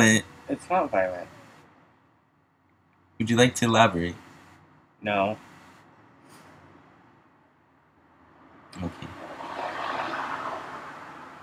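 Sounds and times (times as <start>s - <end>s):
speech: 0.0s - 1.4s, 3.2s - 4.3s, 5.0s - 5.5s, 8.7s - 9.2s
vehicle passing by outside: 8.1s - 11.4s.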